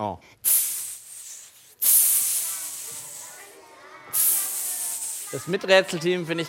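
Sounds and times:
speech: 0:00.0 - 0:00.8, 0:05.3 - 0:06.4
person imitating a snake with breathy hissing: 0:00.4 - 0:05.5.

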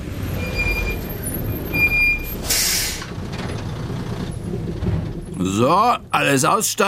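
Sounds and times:
large tour bus engine droning and idling at a concert hall: 0:00.0 - 0:06.8
tour bus air brakes hissing: 0:02.2 - 0:03.1
speech: 0:05.4 - 0:06.8.

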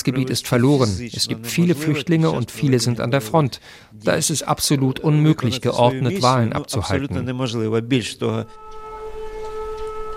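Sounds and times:
speech: 0:00.0 - 0:08.8
air raid siren in Kryvyi Rih: 0:08.4 - 0:10.1.

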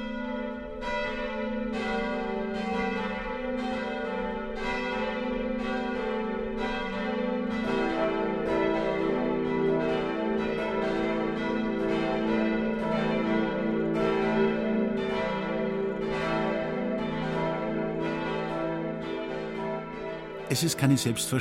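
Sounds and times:
several church bells pealing the noon chime: 0:00.0 - 0:21.3
speech: 0:20.5 - 0:21.3.

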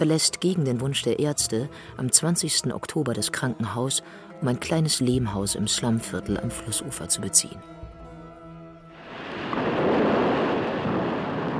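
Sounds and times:
speech: 0:00.0 - 0:07.8
heavy rain pouring: 0:09.0 - 0:11.5
deep rumble of thunder: 0:09.2 - 0:11.5.

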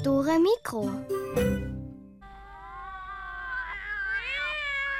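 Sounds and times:
speech: 0:00.1 - 0:01.7
kitten meowing: 0:02.5 - 0:04.9.

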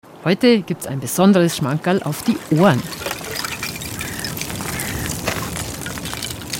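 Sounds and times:
speech: 0:00.2 - 0:03.2
small waves from swimming strokes sloshing near a shore: 0:01.6 - 0:06.5
small floating ice shards clinking together: 0:02.2 - 0:06.5.

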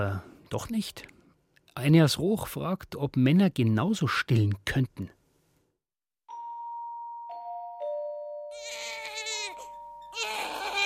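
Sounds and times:
speech: 0:00.0 - 0:01.2, 0:01.8 - 0:05.2
soft ringing chime tones: 0:06.3 - 0:10.5
baby crying at night: 0:08.5 - 0:10.8.

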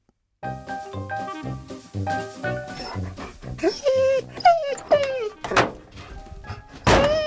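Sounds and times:
dog whimpering: 0:02.7 - 0:05.6, 0:06.9 - 0:07.2
dog letting out short high yips: 0:03.6 - 0:05.6.

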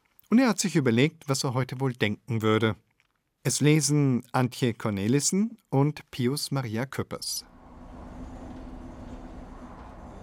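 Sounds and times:
speech: 0:00.3 - 0:07.5
constant mechanical hum of a train: 0:07.4 - 0:10.2
moving train rumbling heard from inside the carriage: 0:07.4 - 0:10.2.

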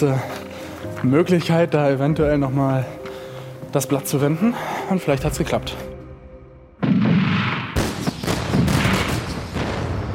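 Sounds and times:
speech: 0:00.0 - 0:03.0, 0:03.7 - 0:05.9
gunboat cannon shots: 0:06.8 - 0:10.1.

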